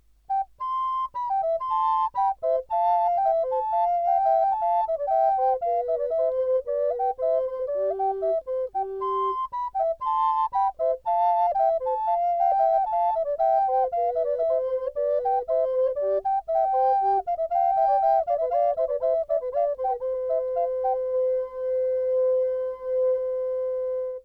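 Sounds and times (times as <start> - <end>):
recorder playing a canon: 0.3 - 24.2.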